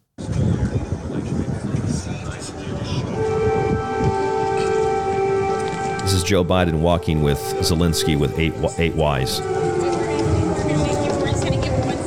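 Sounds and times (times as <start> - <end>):
rumbling outdoor noise: 0.2 - 6.7, 8.4 - 12.0
air raid siren: 2.4 - 12.0
speech: 6.3 - 9.7.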